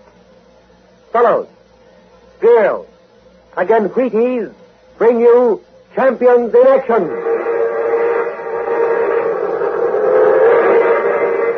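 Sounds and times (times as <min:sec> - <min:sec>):
speech: 0:01.2 - 0:01.6, 0:02.4 - 0:02.9, 0:03.6 - 0:07.3
sustained locomotive whistle blowing: 0:06.8 - 0:11.5
orange and silver streamlined locomotive roaring past: 0:07.0 - 0:11.5.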